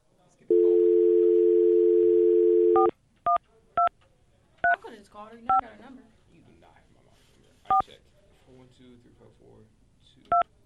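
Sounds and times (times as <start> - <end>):
telephone dial tone: 0.5 - 2.9
telephone keypad dialing beeps: 0.5 - 3.9.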